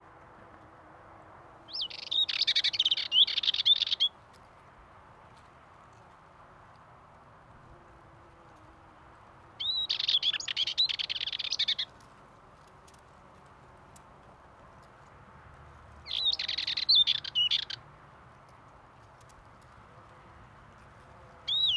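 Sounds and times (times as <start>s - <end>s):
male Dartford warbler singing at Pornic Loire Atlantique France: 1.7s - 4.2s, 9.6s - 12.0s, 16.0s - 17.8s, 21.4s - 21.7s.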